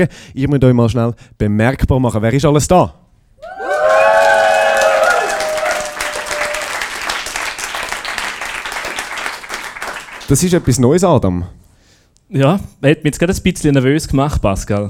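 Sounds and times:
speech: 0.0s - 3.6s, 10.3s - 11.6s, 12.3s - 14.8s
live crowd cheering and whooping: 3.4s - 7.9s
live crowd applause: 3.4s - 10.8s.

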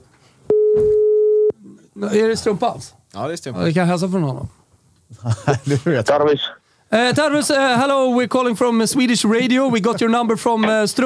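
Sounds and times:
telephone ringing tone in a handset: 0.5s - 1.5s
speech: 2.0s - 11.0s
laughter: 5.1s - 6.1s.

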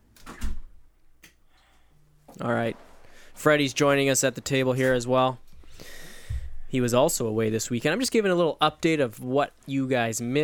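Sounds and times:
door swinging shut with scrape and thud: 0.1s - 0.7s
speech: 2.4s - 5.4s, 6.7s - 10.4s.

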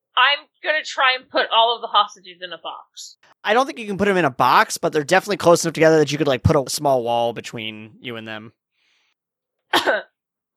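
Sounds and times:
speech: 0.2s - 8.6s, 9.7s - 10.1s
person nervous cough: 9.7s - 10.2s.

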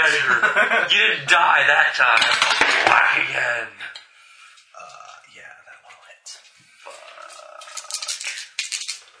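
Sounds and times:
laughter: 0.0s - 1.3s
speech: 0.0s - 3.9s
three or four dice rolling on a hard surface: 2.1s - 3.1s, 7.3s - 9.0s.

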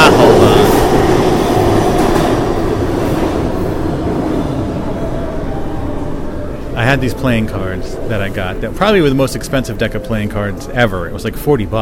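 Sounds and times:
subway train passing through an underground station: 0.0s - 11.8s
speech: 6.9s - 11.8s.

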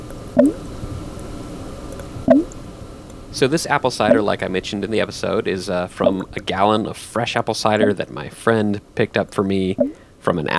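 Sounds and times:
quiet hiss: 0.0s - 10.5s
fermentation airlock bubbling: 0.4s - 0.6s, 2.3s - 2.5s, 4.0s - 4.4s, 6.0s - 6.5s, 7.6s - 8.2s, 9.7s - 10.0s
speech: 0.4s - 0.6s, 3.4s - 10.5s.

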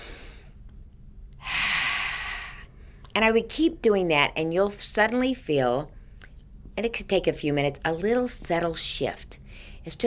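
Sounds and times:
long deep breathing in through nose and out through mouth: 0.0s - 0.6s, 1.4s - 3.0s
speech: 3.2s - 6.0s, 6.8s - 10.0s.

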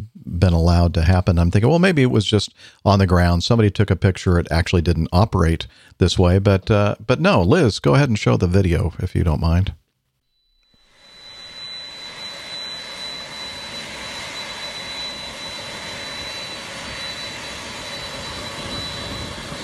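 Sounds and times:
speech: 0.4s - 9.8s
Boeing 767 jet taxiing toward the gate: 10.8s - 19.6s.

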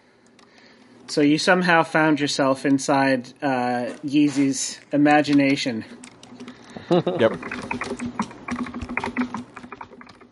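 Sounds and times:
speech: 1.1s - 6.1s, 6.9s - 8.2s
rapid clicking of keys on a computer keyboard: 6.0s - 10.2s
laughter: 6.7s - 7.5s.

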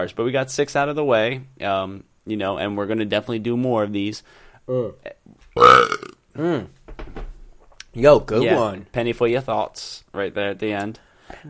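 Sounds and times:
speech: 0.0s - 7.2s, 8.0s - 11.4s
loud burp: 5.6s - 6.2s
short throaty voiced sounds: 5.6s - 6.6s.

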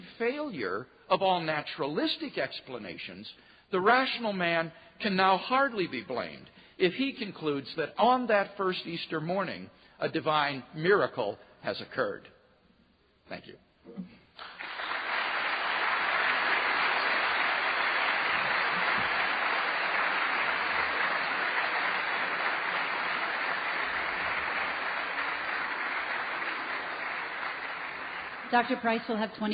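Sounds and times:
speech: 0.2s - 12.4s, 13.3s - 14.2s, 28.5s - 29.5s
large audience applauding after debate speech: 14.4s - 29.5s.

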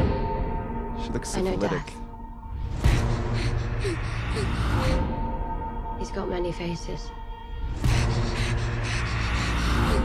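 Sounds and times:
low sustained musical drone: 0.0s - 10.0s
speech: 1.0s - 2.0s, 6.0s - 7.8s
girl panting in a film trailer: 2.6s - 5.1s, 7.7s - 10.0s.

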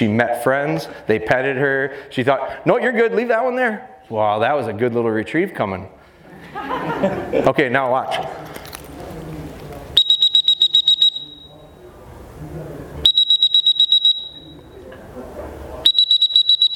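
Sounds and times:
speech: 0.0s - 8.6s
laughter: 6.2s - 8.4s
dog training whistle blasts: 10.0s - 11.6s, 13.1s - 14.6s, 15.9s - 16.7s.

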